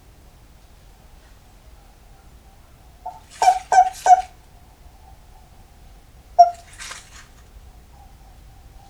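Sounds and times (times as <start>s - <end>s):
Japanese common toad croaking: 3.1s - 4.3s, 6.4s - 6.8s.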